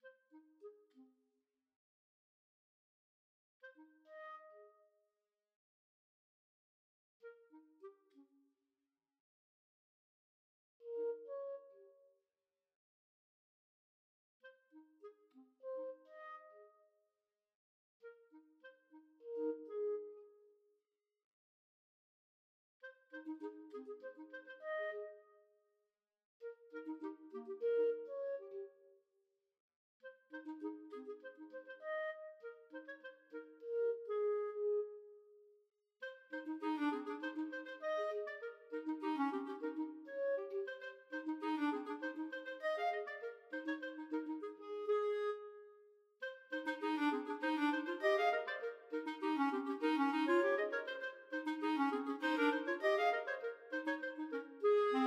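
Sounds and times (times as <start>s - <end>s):
clarinet duet playing a folk tune: 3.7s - 4.7s, 10.8s - 11.9s, 14.7s - 16.7s, 18.0s - 20.3s, 22.9s - 25.3s, 26.4s - 28.7s, 30.1s - 35.3s, 36.0s - 55.0s.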